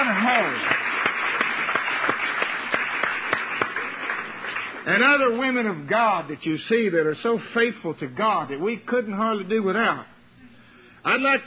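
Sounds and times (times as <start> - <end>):
crowd applause: 0.0 - 4.9
audience clapping hands: 0.0 - 5.4
speech: 4.9 - 10.1, 11.0 - 11.4.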